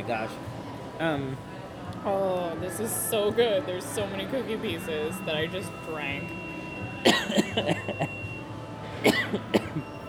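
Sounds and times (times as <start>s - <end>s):
speech: 0.1s - 6.4s, 7.0s - 8.2s, 9.0s - 10.0s
person coughing after drinking a milkshake: 7.0s - 8.0s, 9.0s - 9.8s.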